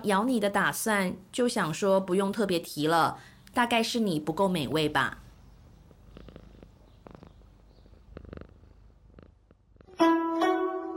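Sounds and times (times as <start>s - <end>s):
speech: 0.0s - 5.2s
cat purring: 4.6s - 10.0s.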